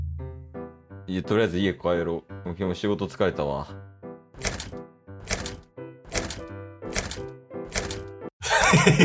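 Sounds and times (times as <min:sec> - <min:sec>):
speech: 0:01.1 - 0:03.9
home door locks being unlocked: 0:04.4 - 0:08.2
laughter: 0:08.4 - 0:09.0.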